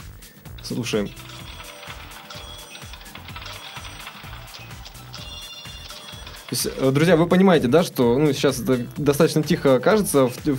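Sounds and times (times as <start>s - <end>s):
falling coins notification sound effect: 0.6s - 7.6s
speech: 0.7s - 1.3s, 6.5s - 10.5s.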